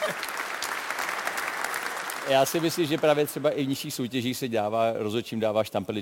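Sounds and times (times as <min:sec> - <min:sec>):
person clapping hands: 0:00.0 - 0:03.2
speech: 0:02.3 - 0:05.9.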